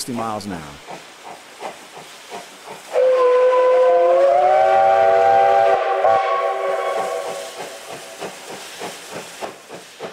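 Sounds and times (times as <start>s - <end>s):
speech: 0.0s - 0.9s
coal-fired steam locomotive chugging at speed along single track: 0.0s - 10.1s
steam locomotive whistle blasting: 2.9s - 7.9s.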